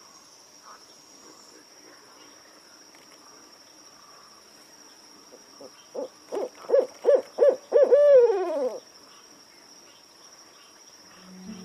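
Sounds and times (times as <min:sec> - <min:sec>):
owl hooting at night: 0:06.0 - 0:08.8
steady high-pitched whine: 0:11.1 - 0:11.6.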